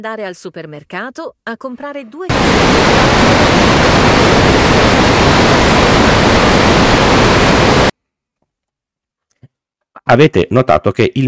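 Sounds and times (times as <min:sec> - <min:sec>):
speech: 0:00.0 - 0:05.0, 0:10.0 - 0:11.2
loud steady white noise: 0:02.3 - 0:07.9.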